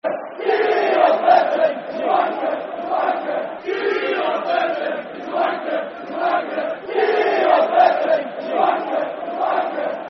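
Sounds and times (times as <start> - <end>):
football crowd chanting: 0.0 - 10.0.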